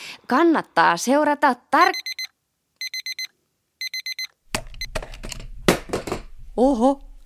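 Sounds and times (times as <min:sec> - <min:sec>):
speech: 0:00.3 - 0:02.1, 0:06.6 - 0:07.1
alarm clock beeping: 0:01.9 - 0:05.0.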